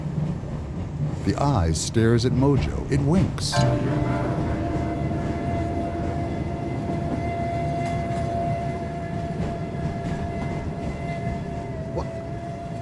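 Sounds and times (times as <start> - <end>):
train rumbling along rails heard from on board: 0.0 - 12.8
speech: 1.3 - 4.2
faint whining hum of a train: 3.5 - 12.6.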